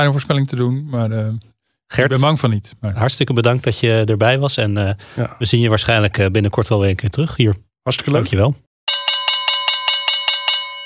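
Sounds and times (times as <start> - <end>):
speech: 0.0 - 8.6
bright metallic bell ringing rapidly signalling the questions round: 8.9 - 10.8.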